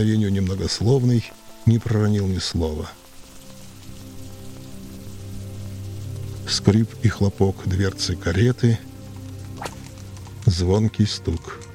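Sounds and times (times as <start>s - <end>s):
speech: 0.0s - 3.0s, 6.5s - 8.9s, 10.5s - 11.6s
light rain tapping on a hat brim and pavement: 0.0s - 11.7s.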